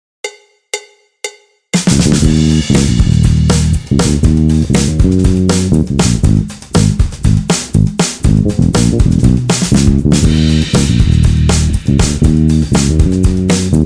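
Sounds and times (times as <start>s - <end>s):
laid back drums: 1.8s - 13.8s.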